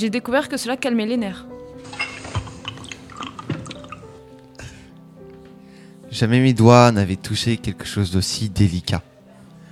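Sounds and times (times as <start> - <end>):
speech: 0.0 - 1.6, 6.1 - 9.1
tea pouring into a cup: 1.8 - 4.3.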